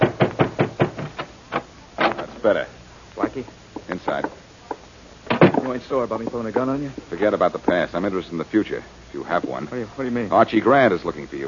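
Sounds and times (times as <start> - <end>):
knocking on a door: 0.0 - 1.3
speech: 2.4 - 4.4, 5.7 - 11.4.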